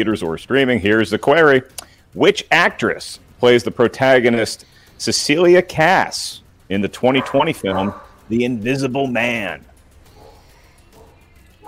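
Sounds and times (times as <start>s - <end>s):
speech: 0.0s - 9.7s
faint dog barking: 7.2s - 8.2s, 10.2s - 11.6s.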